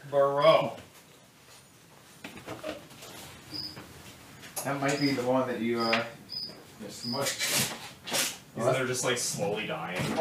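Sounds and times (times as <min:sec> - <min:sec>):
speech: 0:00.1 - 0:00.9, 0:04.6 - 0:06.2, 0:06.8 - 0:07.8, 0:08.6 - 0:10.1
single short high-pitched cricket chirp in a room: 0:03.6 - 0:03.8, 0:05.8 - 0:07.2.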